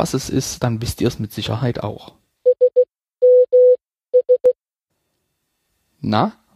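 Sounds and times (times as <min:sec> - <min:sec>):
speech: 0:00.0 - 0:02.2, 0:06.0 - 0:06.4
Nokia text message tone of Morse code beeps: 0:02.5 - 0:04.6.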